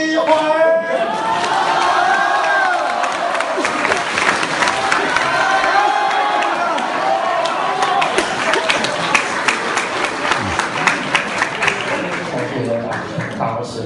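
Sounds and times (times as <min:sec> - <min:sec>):
large audience clapping: 0:00.1 - 0:13.7
crowd shouts and whoops: 0:00.9 - 0:09.3.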